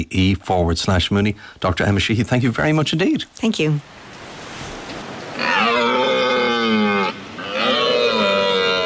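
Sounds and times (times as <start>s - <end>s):
speech: 0.0s - 4.1s
red stag roaring during rutting season: 5.4s - 8.8s.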